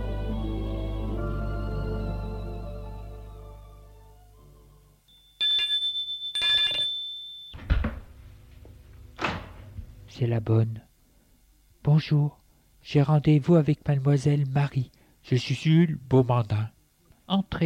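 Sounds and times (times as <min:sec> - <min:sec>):
musical passage: 0:00.0 - 0:05.1
doorbell ringing at a house door: 0:05.1 - 0:07.6
door clattering: 0:07.6 - 0:08.2, 0:09.2 - 0:09.9
speech: 0:10.2 - 0:10.9, 0:11.9 - 0:17.6.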